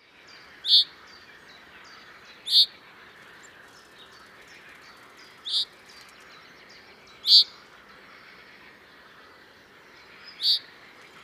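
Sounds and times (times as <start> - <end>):
common chaffinch Fringilla coelebs calls: 0.3 - 6.5, 7.1 - 8.4, 10.0 - 11.2.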